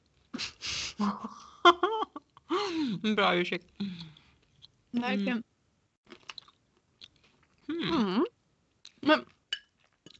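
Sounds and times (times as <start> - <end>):
speech: 1.0 - 1.8, 2.8 - 4.0, 4.9 - 5.5, 7.8 - 8.3, 9.1 - 9.3
wet crunchy chewing of a large mouthful: 6.1 - 7.6, 8.8 - 10.1.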